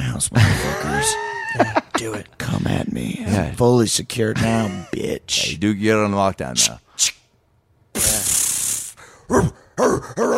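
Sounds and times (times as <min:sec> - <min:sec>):
speech: 0:00.2 - 0:07.2, 0:08.0 - 0:08.2, 0:09.3 - 0:10.3
super soaker water gun hissing burst: 0:08.0 - 0:09.0
man imitating dog barking yelps: 0:09.3 - 0:10.3.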